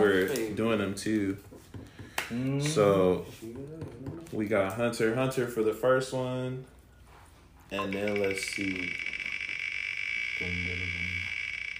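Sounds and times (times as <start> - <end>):
speech: 0.2 - 1.6, 2.3 - 6.8, 7.7 - 9.1, 10.4 - 11.2
spinning wheel whirring with rapid ticking: 7.8 - 11.7
low buzzing croak-like drone: 7.9 - 11.7.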